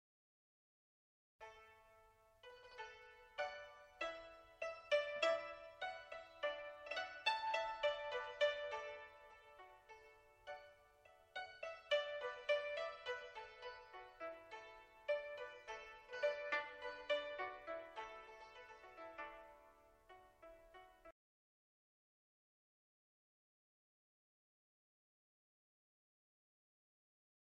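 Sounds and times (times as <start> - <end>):
Chinese folk music: 1.4 - 21.2.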